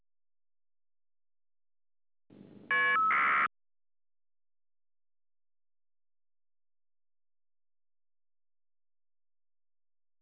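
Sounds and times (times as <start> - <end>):
FSK modem data tones: 2.7 - 3.5.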